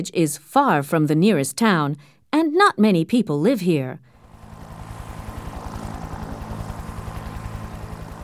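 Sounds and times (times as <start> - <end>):
speech: 0.0 - 4.1
helicopter engine whine: 4.1 - 8.2
helicopter rotor thudding arriving at a hospital: 4.1 - 8.2.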